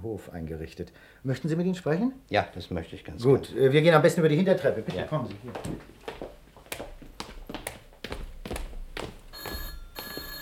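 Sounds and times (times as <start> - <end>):
speech: 0.0 - 6.0
telephone bell ringing in a night watchman's office: 9.3 - 10.4.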